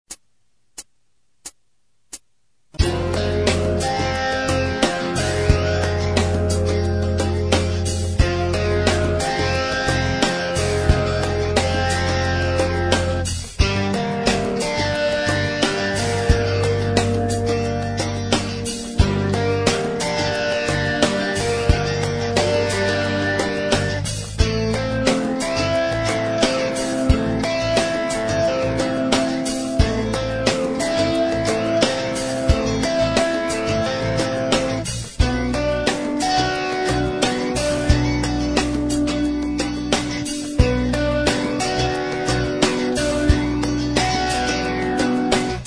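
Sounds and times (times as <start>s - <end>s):
guitar in Aeolian mode: 2.7s - 45.6s.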